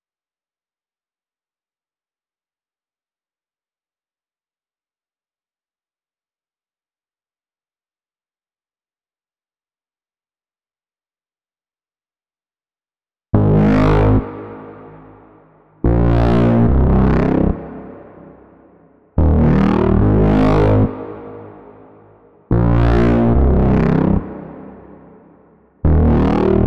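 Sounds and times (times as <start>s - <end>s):
144 BPM C minor bass loop: 13.4s - 26.6s.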